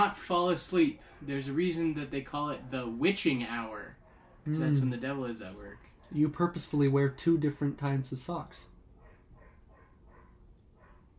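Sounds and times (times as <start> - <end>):
speech: 0.0 - 8.7
dogs barking: 0.9 - 1.4, 3.9 - 4.5, 8.9 - 11.1.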